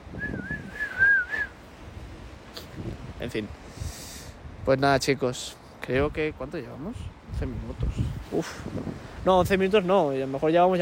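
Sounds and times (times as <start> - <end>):
person whistling at pigeons: 0.2 - 1.6
speech: 3.2 - 3.7, 4.7 - 10.7.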